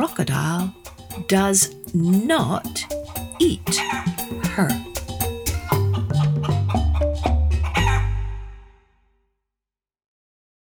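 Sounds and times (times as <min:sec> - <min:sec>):
speech: 0:00.0 - 0:04.9
hen clucking: 0:00.0 - 0:08.3
rooster crowing: 0:03.7 - 0:04.7, 0:05.5 - 0:08.6.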